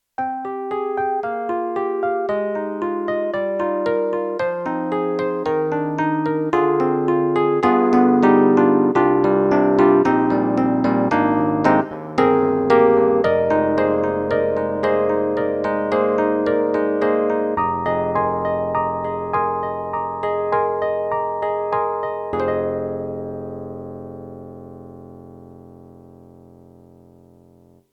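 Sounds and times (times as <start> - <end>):
old electric piano on a synthesizer module: 0.2 - 27.9.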